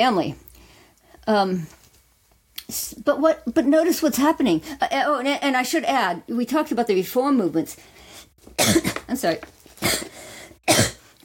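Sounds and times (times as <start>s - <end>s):
speech: 0.0s - 0.4s, 1.3s - 1.8s, 2.7s - 10.1s
harsh coughs: 8.6s - 9.1s, 9.8s - 11.0s.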